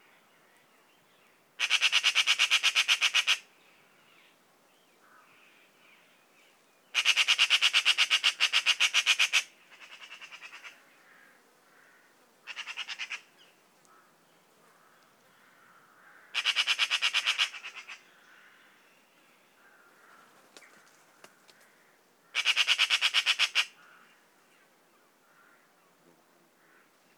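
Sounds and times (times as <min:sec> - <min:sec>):
magpie calling: 0:01.6 - 0:03.5, 0:06.9 - 0:13.4, 0:16.0 - 0:18.1, 0:22.3 - 0:24.2.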